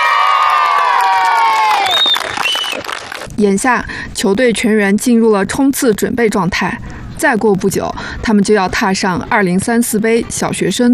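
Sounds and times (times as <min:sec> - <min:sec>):
children shouting and cheering on a primary school football field: 0:00.0 - 0:02.0
speech: 0:03.4 - 0:10.9.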